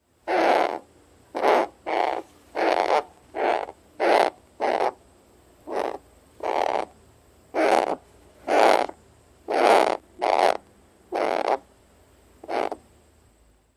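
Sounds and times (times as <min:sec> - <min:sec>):
captive Harris's Hawk calls: 0:00.2 - 0:05.0, 0:05.6 - 0:06.9, 0:07.5 - 0:11.7, 0:12.4 - 0:12.8.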